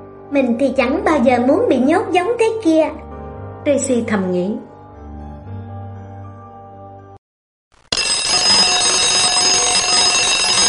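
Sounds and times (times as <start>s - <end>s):
speech: 0.3s - 4.7s
prison alarm bell ringing: 7.9s - 10.6s.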